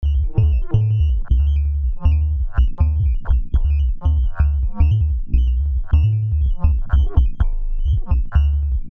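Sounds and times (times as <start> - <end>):
Buchla 200 synthesizer dub bass: 0.0 - 8.9.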